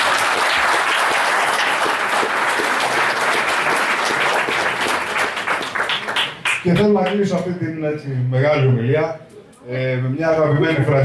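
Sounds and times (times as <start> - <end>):
audience applause: 0.0 - 7.3
speech: 6.6 - 11.0.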